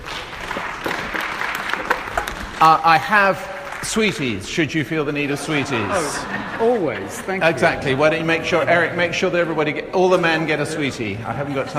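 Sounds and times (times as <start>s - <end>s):
audience applause after a Christian talk: 0.0s - 8.2s
speech: 2.6s - 11.7s
laughter: 5.0s - 11.7s.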